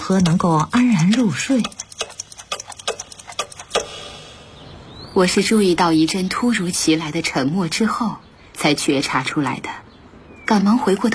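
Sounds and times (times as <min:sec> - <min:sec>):
many clocks ticking together in a palace hall: 0:00.0 - 0:04.2
speech: 0:00.1 - 0:01.9, 0:05.2 - 0:09.8, 0:10.5 - 0:11.1.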